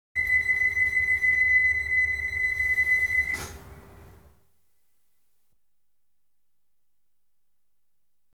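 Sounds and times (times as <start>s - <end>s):
electric train starting bleep: 0.2s - 4.3s.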